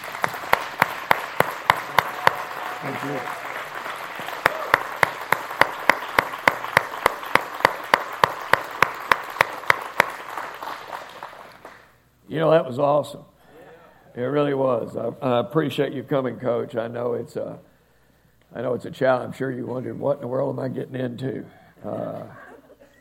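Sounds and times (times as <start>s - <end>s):
audience clapping: 0.0s - 12.0s
speech: 2.8s - 3.4s, 12.3s - 13.3s, 14.2s - 17.7s, 18.5s - 22.4s.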